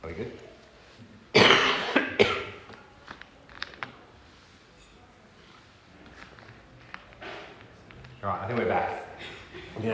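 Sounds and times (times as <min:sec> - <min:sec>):
speech: 0:00.1 - 0:00.5, 0:08.5 - 0:09.9
person coughing harshly: 0:01.4 - 0:02.6.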